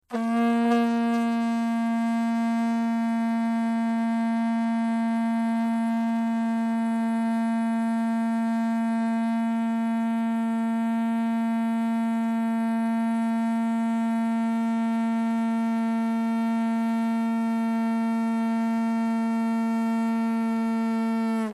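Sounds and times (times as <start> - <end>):
long vuvuzela blast: 0.0 - 21.5.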